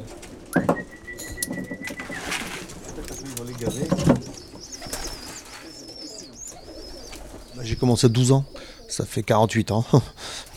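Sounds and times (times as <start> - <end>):
rustle: 0.0 - 9.2
racing pigeons cooing inside a loft: 0.0 - 10.5
faint higher chirps: 0.5 - 9.0
speech: 3.6 - 4.2, 7.6 - 10.4.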